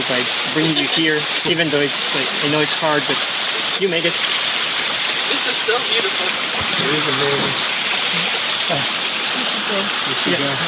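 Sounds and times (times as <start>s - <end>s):
faint indistinct voices murmuring: 0.0s - 3.2s, 5.2s - 10.6s
forest stream water rushing: 0.0s - 10.6s
speech: 0.1s - 4.6s, 5.3s - 10.6s.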